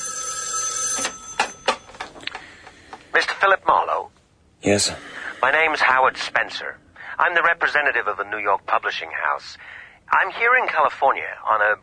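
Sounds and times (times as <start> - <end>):
telephone bell ringing: 0.0 - 2.2
speech: 3.4 - 11.8.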